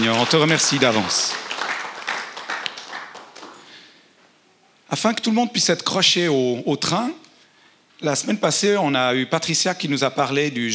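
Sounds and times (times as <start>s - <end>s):
crowd applauding: 0.0s - 3.9s
speech: 0.1s - 1.4s, 4.9s - 7.2s, 8.0s - 10.7s.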